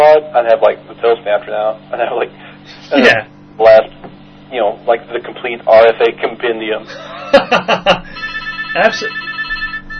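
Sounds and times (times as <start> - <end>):
speech: 0.2 - 3.9, 4.5 - 9.3
laughter: 6.9 - 8.3
telephone electronic ringing: 7.8 - 9.9.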